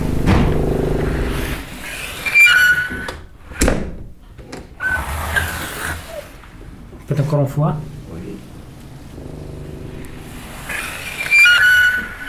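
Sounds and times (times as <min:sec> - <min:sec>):
door swinging with a thin drawn-out creak: 0:00.0 - 0:06.4, 0:09.2 - 0:12.2
sharp door thump: 0:00.2 - 0:00.7
speech: 0:07.3 - 0:07.9.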